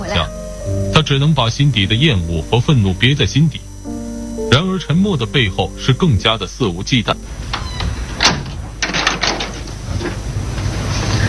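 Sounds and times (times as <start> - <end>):
quiet room hum: 0.0 - 11.2
speech: 1.0 - 3.6, 4.5 - 7.4
door clunking and rattling as it settles: 6.2 - 10.9
door being pushed shut: 7.2 - 10.6.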